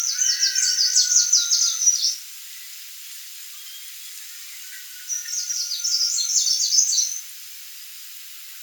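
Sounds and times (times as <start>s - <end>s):
Greenish Warbler Phylloscopus trochiloides song in Povegliano Treviso Italy: 0.0s - 7.3s.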